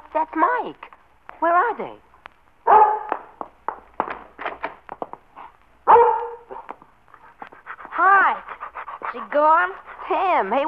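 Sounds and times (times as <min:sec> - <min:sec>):
speech: 0:00.2 - 0:02.1, 0:09.4 - 0:10.6
dog barking: 0:02.7 - 0:03.4, 0:05.9 - 0:06.8
dog yapping and whimpering: 0:05.9 - 0:06.7.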